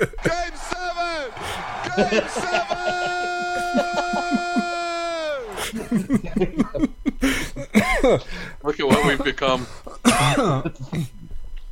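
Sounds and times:
speech: 0.0 - 0.4, 2.0 - 2.8, 5.9 - 6.9, 8.0 - 11.1
laughter: 0.0 - 11.1
person coughing into microphone: 8.9 - 11.2.

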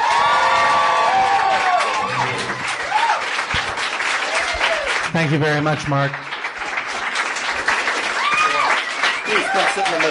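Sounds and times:
live audience cheering and whooping: 0.0 - 5.0, 8.0 - 10.0
live audience applause: 0.0 - 10.0
speech: 5.2 - 6.3, 9.5 - 10.0.

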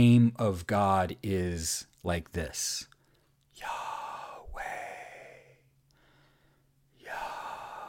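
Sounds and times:
speech: 0.0 - 2.9, 3.6 - 4.0
person breathing in and out: 3.0 - 7.8.

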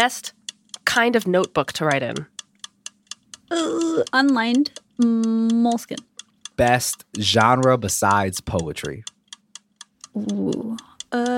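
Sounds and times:
speech: 0.0 - 2.3, 3.5 - 9.1, 10.2 - 11.3
countdown timer ticking for a timed quiz round: 0.0 - 11.3
person murmuring: 3.5 - 4.1, 6.6 - 8.8, 10.2 - 11.3.

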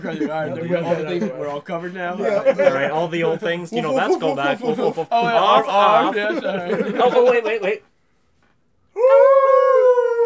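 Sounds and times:
laughter: 0.0 - 7.8
speech: 0.0 - 7.9
person howling like a wolf: 9.0 - 10.2.

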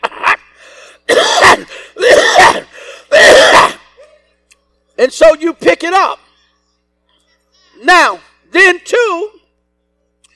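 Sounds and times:
person coughing: 0.0 - 0.4, 1.0 - 4.2
speech: 5.0 - 6.2, 7.8 - 9.4.

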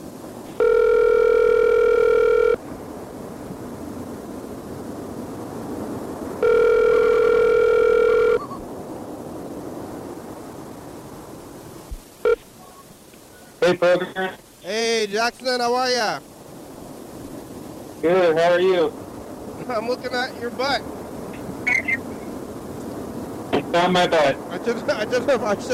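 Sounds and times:
faint hiss: 0.0 - 25.7
phone line ringing tone: 0.6 - 2.6, 6.4 - 8.6, 12.2 - 12.4
speech: 13.7 - 14.4, 15.0 - 16.3, 18.0 - 19.0, 19.7 - 20.9, 23.7 - 25.7.

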